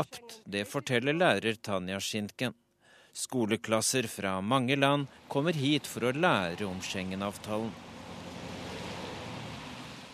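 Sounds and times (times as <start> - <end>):
speech: 0.0 - 2.6, 3.2 - 7.9
cars crossing a bridge: 4.3 - 10.1.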